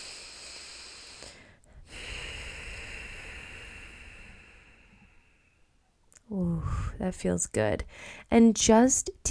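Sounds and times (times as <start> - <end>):
deep breathing during meditation: 0.0 - 7.0, 7.9 - 8.3
speech: 6.3 - 9.2.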